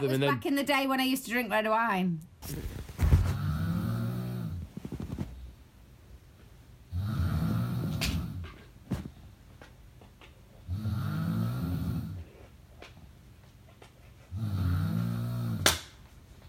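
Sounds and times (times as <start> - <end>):
speech: 0.0 - 2.8
woman snoring after drinking red wine: 3.3 - 4.7, 6.9 - 8.4, 10.7 - 12.3, 14.3 - 15.7.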